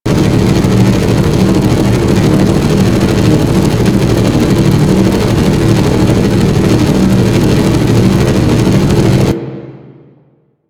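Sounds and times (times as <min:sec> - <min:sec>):
generator fan: 0:00.0 - 0:09.8.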